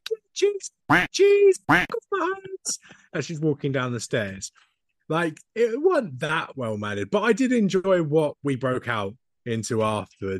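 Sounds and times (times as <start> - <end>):
speech: 0.4 - 10.3
short voiced bursts: 0.9 - 2.0
buzzy nasal duck quack effect censoring a swear word: 1.7 - 2.0.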